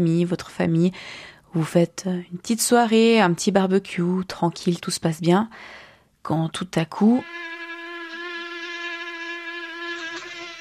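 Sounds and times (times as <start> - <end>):
speech: 0.0 - 7.5
mosquito whining: 7.2 - 10.5.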